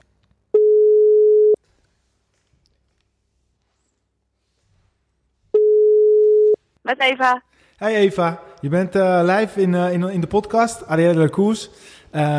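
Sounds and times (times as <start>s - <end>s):
telephone ringback tone while a call connects: 0.6s - 1.6s, 5.6s - 6.6s
speech: 6.9s - 12.3s.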